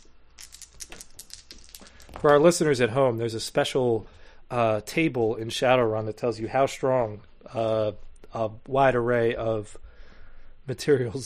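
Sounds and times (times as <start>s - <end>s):
dice rattling and clattering across a tabletop in a tabletop game: 0.0s - 2.5s
speech: 2.2s - 9.8s, 10.7s - 11.2s.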